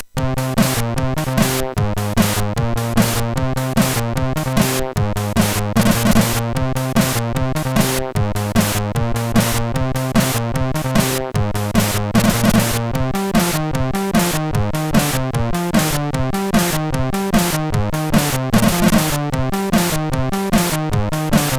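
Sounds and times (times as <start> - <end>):
bass from a MOS6581R3 SID chip: 0.2 - 21.5.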